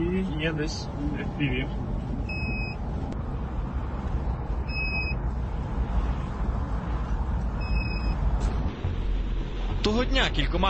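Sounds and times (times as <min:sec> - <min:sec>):
city street traffic rumble of many cars: 0:00.0 - 0:10.6
speech: 0:00.4 - 0:01.9, 0:09.8 - 0:10.6
pairs of high electronic beeps: 0:07.6 - 0:08.2.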